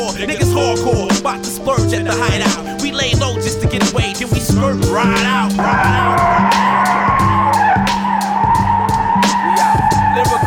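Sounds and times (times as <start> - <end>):
speech: 0.0 - 3.7, 4.5 - 6.2
loud rhythmic music beat: 0.0 - 10.4
car tires skidding and squealing as car accelerates hard: 4.8 - 10.4.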